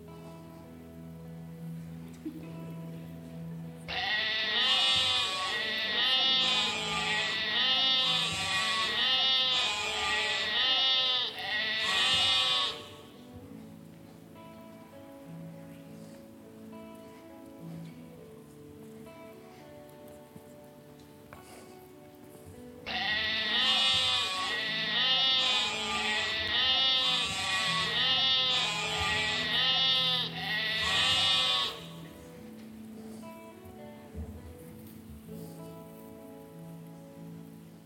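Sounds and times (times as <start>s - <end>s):
sheep bleating: 3.9s - 13.2s, 22.8s - 32.3s.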